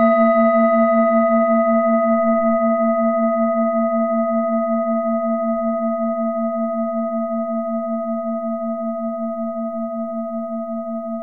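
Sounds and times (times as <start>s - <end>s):
planet-tuned singing bowl: 0.0s - 11.2s.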